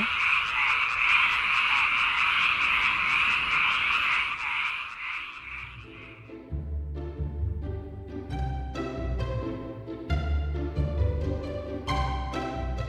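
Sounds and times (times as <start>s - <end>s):
dense chorus of frogs croaking on early-spring day: 0.0s - 6.5s
instrumental music with a bass line: 6.5s - 12.8s.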